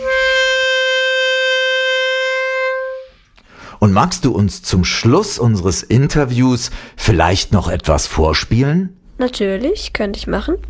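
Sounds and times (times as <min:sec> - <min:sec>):
clarinet sounding a high D: 0:00.0 - 0:03.2
speech: 0:03.8 - 0:10.6.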